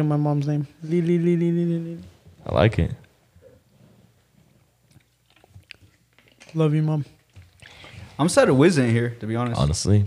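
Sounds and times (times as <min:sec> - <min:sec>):
speech: 0:00.0 - 0:03.0, 0:06.5 - 0:07.2, 0:08.2 - 0:10.0
open-mouthed chewing with wet smacking and crunchy clicks: 0:04.4 - 0:08.2.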